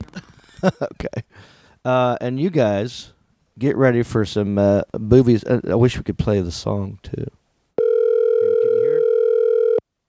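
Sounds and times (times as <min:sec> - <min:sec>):
speech: 0:00.6 - 0:07.4
telephone ringback tone on outgoing call: 0:07.8 - 0:09.8.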